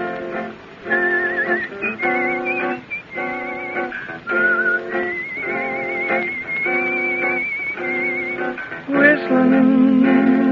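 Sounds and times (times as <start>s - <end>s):
steady rhythmic instrumental backing: 0.0s - 10.5s
person whistling a cowboy-style melody: 0.8s - 8.6s.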